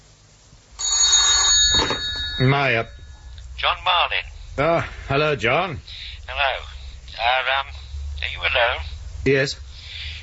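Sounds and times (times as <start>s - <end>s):
telephone bell ringing with a bright metallic jangle: 0.8s - 3.3s
speech: 2.4s - 3.0s, 3.6s - 7.7s, 8.4s - 9.6s.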